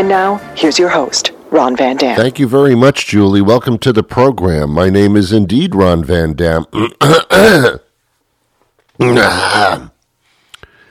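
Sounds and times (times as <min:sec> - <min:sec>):
speech: 0:00.0 - 0:07.8, 0:09.0 - 0:09.9
rough voiced throat-clearing rasp: 0:06.8 - 0:07.9, 0:09.0 - 0:10.0.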